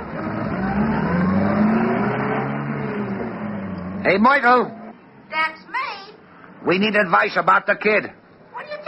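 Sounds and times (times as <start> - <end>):
car engine droning while driving around the block: 0.0 - 5.3
speech: 4.0 - 5.7, 6.6 - 8.2.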